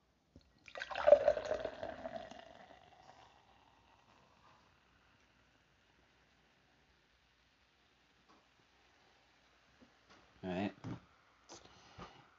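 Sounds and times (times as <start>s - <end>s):
kombucha fizzing: 0.6s - 4.2s
pineapple peach kombucha pouring into a glass: 0.6s - 4.7s.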